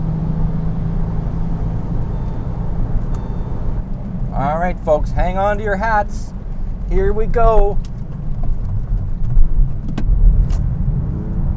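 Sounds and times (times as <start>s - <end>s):
car engine roaring during a power slide on a wet road: 0.0s - 11.5s
speech: 4.6s - 7.9s.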